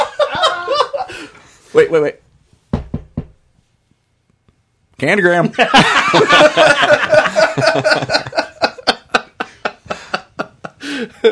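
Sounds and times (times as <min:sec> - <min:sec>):
laughter: 0:00.0 - 0:01.3, 0:05.5 - 0:11.3
speech: 0:01.8 - 0:02.2, 0:05.0 - 0:08.2, 0:11.0 - 0:11.3
firm knocking on a door: 0:02.7 - 0:03.5.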